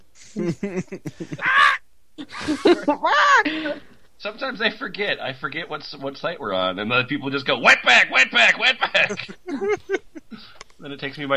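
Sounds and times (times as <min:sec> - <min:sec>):
laughter: 0:00.2 - 0:03.9, 0:08.2 - 0:10.6
speech: 0:00.4 - 0:11.3
person imitating crow caws: 0:01.2 - 0:01.8.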